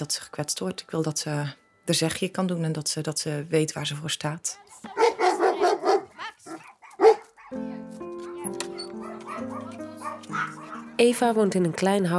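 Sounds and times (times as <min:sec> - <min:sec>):
speech: 0:00.0 - 0:05.0, 0:11.0 - 0:12.1
soft music: 0:00.0 - 0:12.1
dogs barking: 0:04.9 - 0:11.0.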